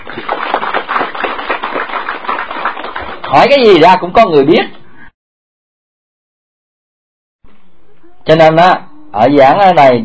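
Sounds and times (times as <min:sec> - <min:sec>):
audience at a Buddhist dharma talk clapping: 0:00.0 - 0:03.8
speech: 0:03.3 - 0:04.8, 0:08.3 - 0:10.0.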